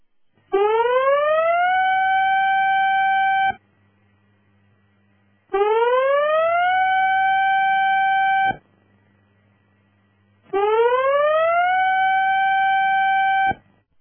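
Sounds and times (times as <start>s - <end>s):
tsunami warning siren for a major tsunami warning: 0.5s - 3.6s, 5.5s - 8.6s, 10.5s - 13.6s.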